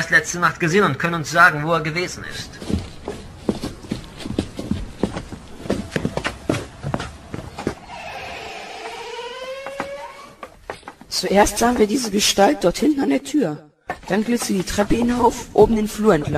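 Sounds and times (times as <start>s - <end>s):
speech: 0.0s - 2.8s, 11.2s - 16.3s
footsteps of several people walking into a building: 2.3s - 12.3s, 13.9s - 16.3s.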